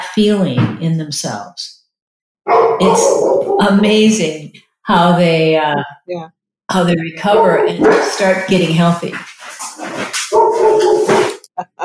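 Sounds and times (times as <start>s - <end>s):
speech: 0.2s - 1.8s, 2.4s - 9.3s, 10.0s - 11.8s
female dog yelping: 2.5s - 3.7s, 10.3s - 11.3s
female dog barking: 2.5s - 3.8s, 7.3s - 8.3s, 10.3s - 11.4s.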